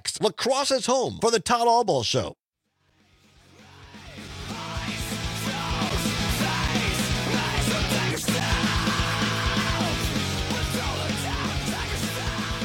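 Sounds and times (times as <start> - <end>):
speech: 0.2 - 2.4
loud dense rock band music: 3.4 - 12.6.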